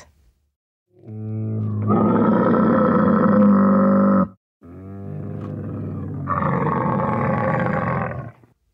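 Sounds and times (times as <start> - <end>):
camel bellowing guttural groans: 1.0 - 8.4.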